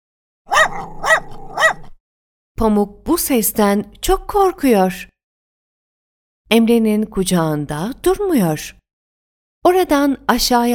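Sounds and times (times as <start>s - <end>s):
dog barking: 0.5s - 2.0s
speech: 2.6s - 5.1s, 6.5s - 8.8s, 9.6s - 10.7s.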